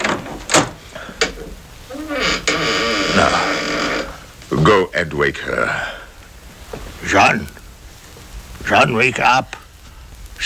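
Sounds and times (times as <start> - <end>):
door creaking open: 0.0 - 4.3
speech: 4.6 - 6.0, 7.0 - 7.6, 8.7 - 9.6.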